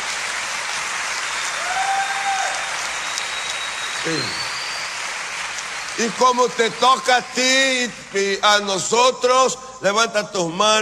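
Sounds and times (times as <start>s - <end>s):
audience clapping: 0.0s - 8.9s
faint cheer or whistle from audience: 1.2s - 6.5s
speech: 4.0s - 4.4s, 6.0s - 10.8s.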